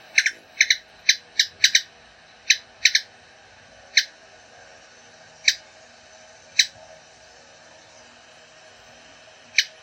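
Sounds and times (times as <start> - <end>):
ruby-throated hummingbird: 0.0 - 3.1, 3.8 - 4.2, 4.9 - 8.3, 9.4 - 9.8.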